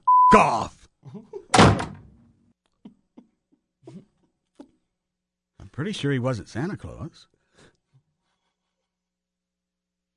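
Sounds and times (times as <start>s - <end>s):
speech: 0.3s - 1.6s, 5.8s - 7.3s
door pulled open with a loud thunk: 1.5s - 2.2s.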